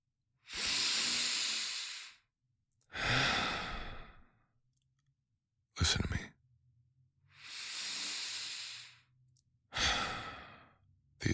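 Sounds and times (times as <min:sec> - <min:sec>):
deep breaths: 0:00.4 - 0:02.3, 0:02.9 - 0:04.4, 0:07.3 - 0:09.1, 0:09.7 - 0:10.8
speech: 0:05.8 - 0:06.1.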